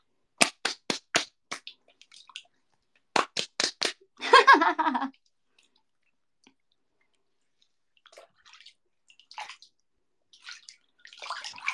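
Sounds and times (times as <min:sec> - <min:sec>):
lotion-covered hands slapping thighs: 0:00.4 - 0:01.8, 0:03.1 - 0:04.0
laughter: 0:04.2 - 0:05.1.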